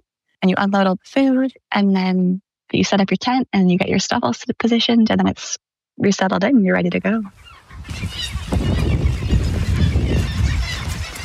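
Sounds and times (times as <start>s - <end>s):
speech: 0.4s - 9.0s
thousands of birds honking and squawking at a bird colony on Middleton Island: 7.3s - 11.2s.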